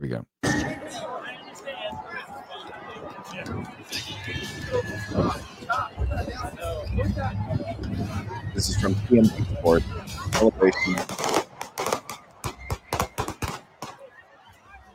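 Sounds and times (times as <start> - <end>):
speech: 0.0 - 1.1, 6.2 - 11.4
large parade crowd chattering: 0.4 - 14.9
rapid sharp cracking gunshots fired into a parade crowd: 10.4 - 14.0.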